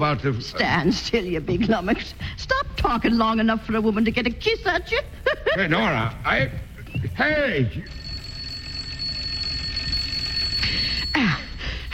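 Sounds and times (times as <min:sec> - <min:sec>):
speech: 0:00.0 - 0:08.0
laughter: 0:05.0 - 0:06.8
electric doorbell ringing: 0:07.9 - 0:11.6.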